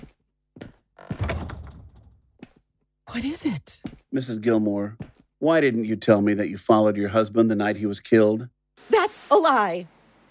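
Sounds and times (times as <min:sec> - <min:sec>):
door being pushed shut: 0:01.0 - 0:02.3
speech: 0:03.1 - 0:10.0.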